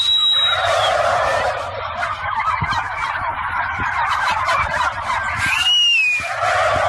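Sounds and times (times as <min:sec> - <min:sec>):
high whistle: 0:00.0 - 0:01.0, 0:05.4 - 0:06.3
flock of turkeys gobbling: 0:00.0 - 0:06.8.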